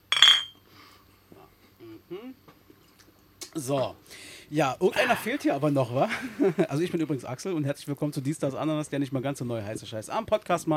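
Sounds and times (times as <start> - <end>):
glasses clinking in a toast: 0.0 - 0.6
speech: 2.1 - 2.6, 3.6 - 10.7
laughter: 6.0 - 6.8.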